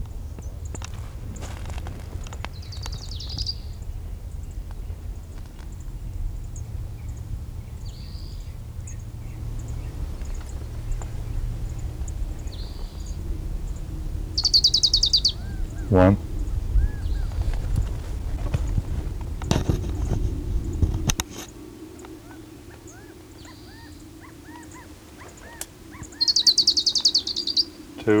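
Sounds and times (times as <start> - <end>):
steady low rumble: 0.0 - 21.2
orange-crowned warbler singing on a canyon divide: 0.0 - 28.1
speech: 15.9 - 16.2.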